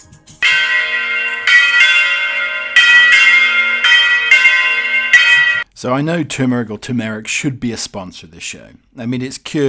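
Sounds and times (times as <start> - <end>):
church bells ringing: 0.4 - 5.7
speech: 5.8 - 9.6.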